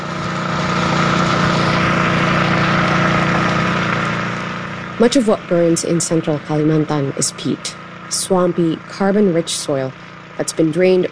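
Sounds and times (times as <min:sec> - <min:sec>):
fire truck engine running at a roadside brush fire in central Kalimantan: 0:00.0 - 0:11.1
speech: 0:05.0 - 0:11.1.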